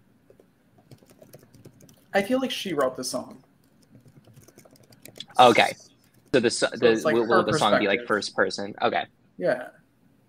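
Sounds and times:
fingers typing on a computer keyboard: 0:00.3 - 0:02.1, 0:02.7 - 0:03.0, 0:03.6 - 0:05.4, 0:06.0 - 0:06.4
speech: 0:02.1 - 0:03.4, 0:05.4 - 0:09.8.

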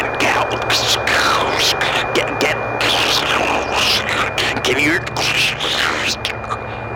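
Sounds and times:
garbled voice fragments on a phone call: 0:00.0 - 0:06.7
crackling static on a phone call breaking up: 0:00.0 - 0:06.9
steady low hum: 0:00.0 - 0:06.9
thin whine: 0:00.0 - 0:06.9.

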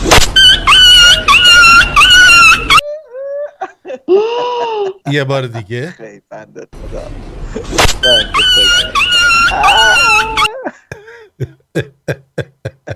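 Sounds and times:
dog yelping and whining: 0:00.4 - 0:02.8, 0:08.0 - 0:10.6
speech: 0:05.1 - 0:11.9.

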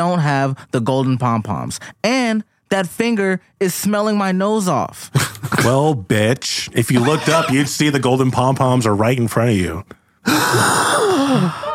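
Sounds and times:
speech: 0:00.0 - 0:11.7
person theatrically performing a drawn-out gasp: 0:10.0 - 0:11.7.

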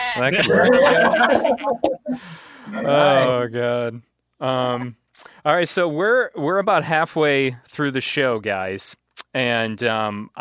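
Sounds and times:
goat bleating: 0:00.0 - 0:01.4
laughter: 0:00.2 - 0:03.4
speech: 0:00.2 - 0:10.3.

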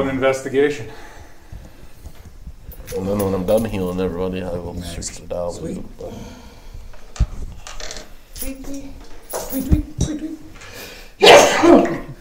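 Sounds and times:
speech: 0:00.0 - 0:01.1, 0:02.9 - 0:06.4, 0:08.4 - 0:10.4, 0:11.2 - 0:12.0
loud sneeze: 0:11.2 - 0:12.1.

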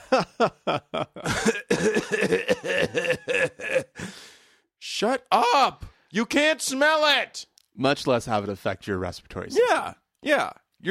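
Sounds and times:
throaty chuckle-like bursts: 0:00.0 - 0:04.0
speech: 0:00.2 - 0:01.6, 0:05.0 - 0:10.8
person fake coughing mimicking an audience coughing at cigarette smoke: 0:01.2 - 0:04.1.

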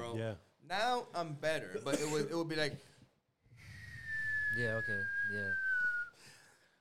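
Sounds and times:
speech: 0:00.1 - 0:02.9, 0:04.5 - 0:05.6
person whistling a falling tone imitating a mortar shell coming down: 0:03.6 - 0:06.2.

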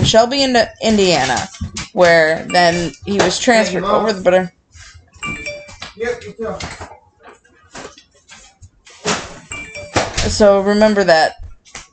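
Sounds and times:
speech: 0:00.0 - 0:04.6, 0:06.0 - 0:07.0, 0:10.2 - 0:11.4
phone notification chime: 0:02.4 - 0:04.0, 0:05.2 - 0:06.2, 0:09.4 - 0:10.9.

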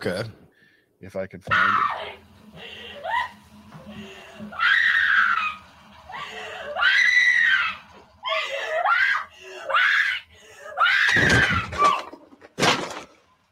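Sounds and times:
speech: 0:00.0 - 0:00.4, 0:01.0 - 0:02.8
woman screaming in a horror film clip: 0:01.5 - 0:02.2, 0:03.0 - 0:03.4, 0:04.5 - 0:12.1
woman's gasping breaths: 0:02.4 - 0:04.6, 0:08.3 - 0:10.8.

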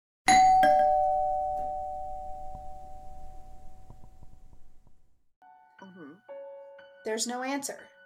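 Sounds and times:
doorbell ringing: 0:00.3 - 0:04.3
speech: 0:07.1 - 0:07.9.

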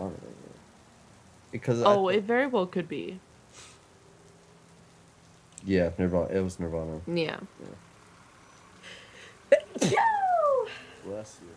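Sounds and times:
speech: 0:01.5 - 0:03.7, 0:05.7 - 0:07.9, 0:11.1 - 0:11.5
person sneezing: 0:09.6 - 0:10.1.

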